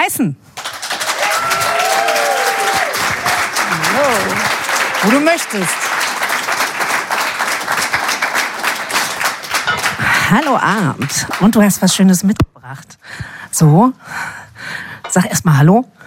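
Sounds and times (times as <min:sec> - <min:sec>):
speech: 0:00.0 - 0:00.6, 0:03.9 - 0:06.0, 0:10.3 - 0:14.2, 0:15.1 - 0:16.0
loud steady audience applause: 0:00.6 - 0:11.6.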